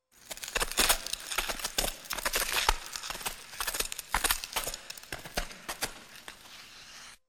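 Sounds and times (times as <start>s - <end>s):
ice skates gliding on ice: 0.2s - 7.2s.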